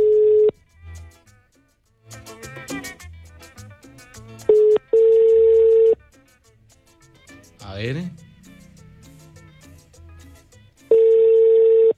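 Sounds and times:
telephone dial tone: 0.0 - 0.5, 4.5 - 6.0, 10.9 - 11.9
touch-tone beeps of a telephone number being dialed: 4.5 - 6.0, 10.9 - 11.9
speech: 7.8 - 8.2.

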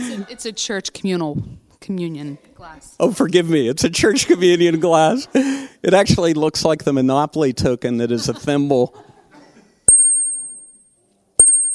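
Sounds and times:
speech: 0.2 - 9.1
laughter: 4.0 - 5.7, 8.0 - 9.9
bright high handbell strikes from a handbell choir: 9.9 - 11.7
chimes ringing: 9.9 - 11.7.

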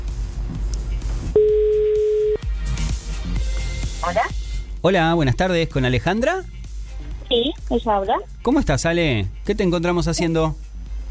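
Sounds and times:
busy music: 0.0 - 11.1
telephone ringback tone while calling a mobile phone: 1.4 - 2.4
speech: 4.1 - 6.6, 7.3 - 10.6.

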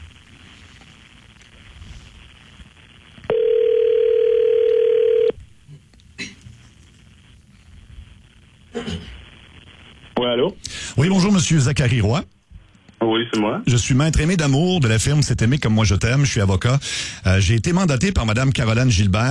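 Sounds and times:
outgoing phone call ringback tone: 3.3 - 5.4
speech: 11.4 - 12.3, 13.2 - 19.2.

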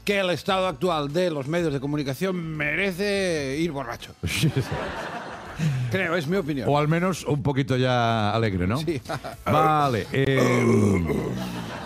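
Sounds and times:
speech: 0.1 - 11.8
laughter: 4.2 - 6.0, 10.9 - 11.8
small low burp: 10.4 - 11.4.

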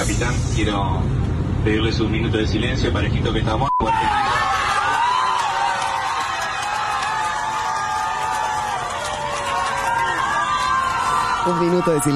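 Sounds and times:
speech: 0.2 - 4.5, 11.5 - 12.1
crowd of airplane passengers shouting and cheering: 3.8 - 12.1.

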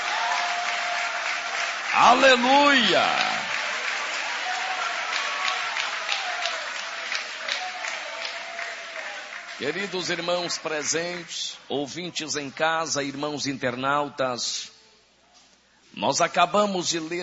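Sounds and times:
congregation clapping: 0.0 - 11.6
speech: 2.0 - 3.3, 9.6 - 14.7, 16.0 - 17.2.

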